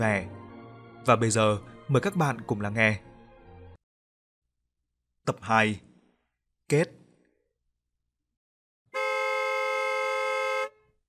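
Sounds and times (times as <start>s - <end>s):
speech: 0.0s - 0.4s, 1.0s - 3.1s, 5.3s - 5.9s, 6.7s - 7.0s
loud truck horn blast: 8.9s - 10.9s.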